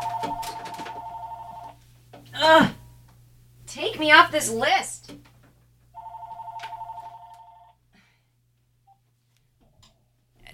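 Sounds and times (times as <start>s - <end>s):
landline telephone behind a TV ringing: 0.0s - 1.8s, 6.0s - 7.8s
speech: 2.4s - 2.8s, 4.0s - 5.0s.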